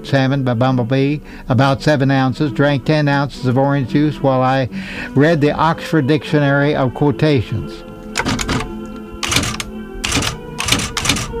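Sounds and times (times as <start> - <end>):
speech: 0.0 - 8.4
rapid mechanical typewriter keystrokes: 8.2 - 11.3.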